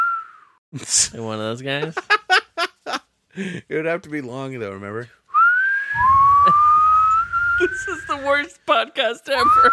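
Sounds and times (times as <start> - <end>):
long loud human whistle: 0.0 - 0.6, 5.3 - 8.2, 9.4 - 9.7
speech: 0.7 - 2.2, 3.4 - 5.2, 6.0 - 6.7, 7.6 - 9.7.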